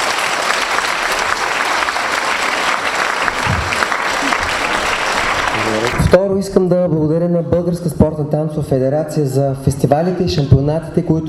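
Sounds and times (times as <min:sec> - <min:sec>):
audience applause of many hands clapping: 0:00.0 - 0:06.2
speech: 0:06.1 - 0:11.2.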